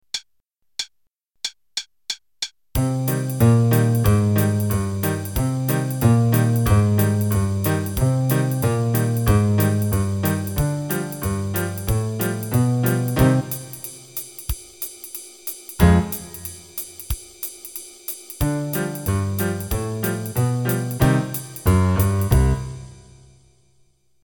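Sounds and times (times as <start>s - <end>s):
drums: 0.1s - 23.2s
bass: 2.8s - 13.8s, 15.8s - 16.7s, 18.4s - 23.2s
boogie music: 2.8s - 14.9s, 15.6s - 23.3s.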